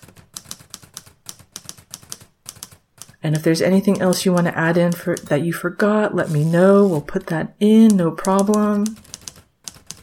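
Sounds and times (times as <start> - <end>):
typing on a computer keyboard: 0.0 - 3.2, 3.8 - 5.3, 7.8 - 10.0
speech: 3.2 - 9.0.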